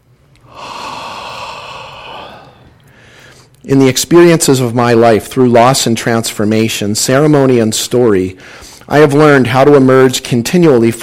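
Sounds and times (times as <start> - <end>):
person taking a big deep breath: 0.4 - 3.6, 8.4 - 8.9
speech: 3.6 - 11.0.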